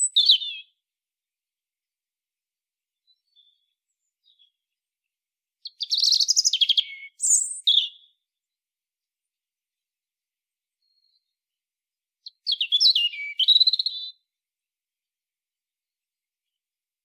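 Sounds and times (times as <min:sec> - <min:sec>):
European robin Erithacus rubecula singing: 0:00.0 - 0:00.8, 0:03.0 - 0:04.7, 0:05.6 - 0:08.2, 0:12.2 - 0:14.3.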